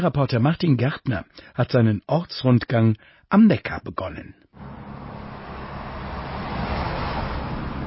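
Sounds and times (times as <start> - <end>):
speech: 0.0 - 4.9
dense road traffic on the Neckar bridge in Heidelberg Germany: 4.6 - 7.8.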